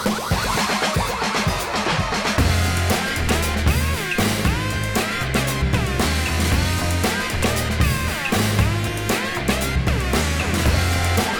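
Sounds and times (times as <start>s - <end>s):
Huawei bongo ringtone: 0.0s - 11.3s.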